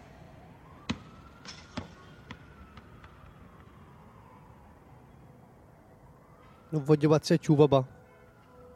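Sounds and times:
ball thumping down and bouncing: 0:00.8 - 0:03.3
speech: 0:06.7 - 0:08.0.

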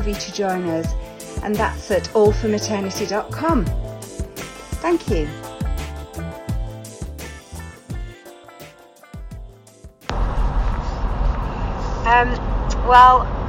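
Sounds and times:
speech: 0:00.0 - 0:03.9, 0:04.8 - 0:05.4, 0:12.1 - 0:13.4
music: 0:00.0 - 0:11.3.

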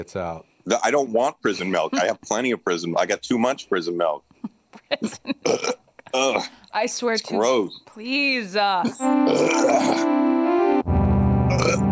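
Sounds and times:
speech: 0:00.0 - 0:10.2
long loud processed burps: 0:05.4 - 0:06.6, 0:08.8 - 0:10.1, 0:11.5 - 0:11.9.

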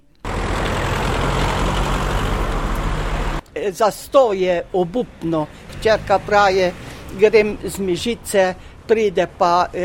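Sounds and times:
idling cars and heavy trucks in traffic queue on main road in Mežica Valley Slovenia: 0:00.2 - 0:03.4, 0:05.5 - 0:08.9
speech: 0:03.6 - 0:09.8.

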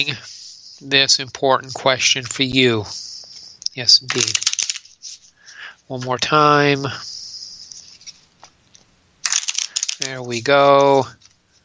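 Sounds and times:
speech: 0:00.0 - 0:03.1, 0:03.8 - 0:04.5, 0:05.9 - 0:07.1, 0:10.0 - 0:11.2
riffle shuffles of a deck of playing cards: 0:03.2 - 0:06.2, 0:07.7 - 0:11.6.

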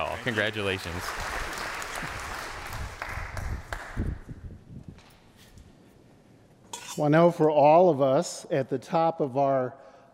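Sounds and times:
roomful of people applauding: 0:00.0 - 0:04.1
speech: 0:00.2 - 0:01.4, 0:07.0 - 0:09.8.

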